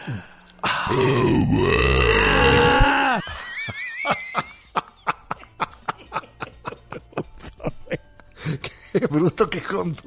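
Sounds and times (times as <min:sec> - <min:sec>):
speech: 0:00.1 - 0:00.3, 0:00.9 - 0:02.6, 0:09.2 - 0:10.0
long loud deep human burp: 0:00.6 - 0:03.2
laughter: 0:03.0 - 0:09.1.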